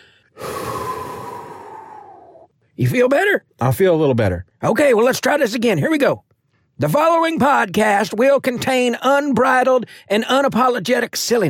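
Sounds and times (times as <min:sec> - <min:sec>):
person breathing deeply to calm down: 0:00.0 - 0:02.5
speech: 0:02.8 - 0:11.4.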